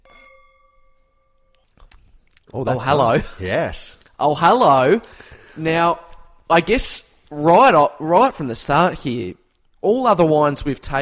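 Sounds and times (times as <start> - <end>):
wine glasses clinking in a toast: 0.0 - 1.5
speech: 2.5 - 11.0.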